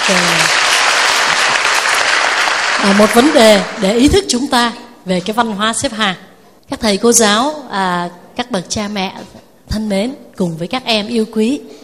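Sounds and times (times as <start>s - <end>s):
applause from an audience at a school gathering of teachers, parents and children: 0.0s - 3.9s
speech: 0.1s - 0.5s, 2.8s - 11.8s.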